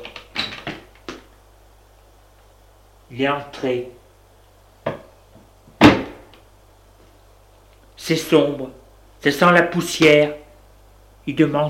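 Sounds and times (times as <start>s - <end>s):
apartment door creaking open: 0.0s - 0.9s
speech: 3.1s - 4.0s, 8.1s - 10.4s, 11.2s - 11.6s.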